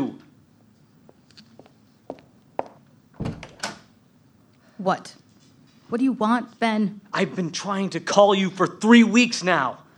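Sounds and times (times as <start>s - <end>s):
soft footsteps: 0.6s - 3.0s
front door of a home unlatching and swinging open: 3.2s - 3.9s
speech: 4.8s - 5.2s, 5.9s - 9.8s.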